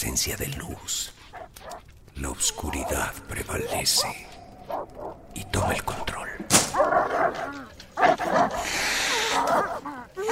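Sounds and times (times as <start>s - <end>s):
speech: 0.0s - 1.2s, 2.2s - 4.8s, 5.4s - 6.2s
several dogs barking and yelping: 1.2s - 5.4s, 6.6s - 10.3s
dogs whimpering with high whines: 2.4s - 5.2s, 6.8s - 10.3s.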